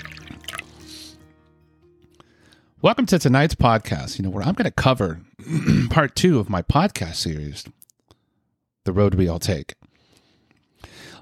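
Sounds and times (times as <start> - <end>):
drink poured into a glass: 0.0 - 1.0
speech: 2.8 - 7.8, 8.8 - 9.8.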